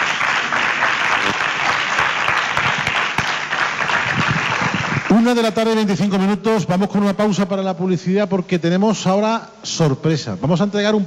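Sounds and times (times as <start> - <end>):
audience applause for a guest speaker: 0.0 - 5.7
speech: 5.2 - 11.0.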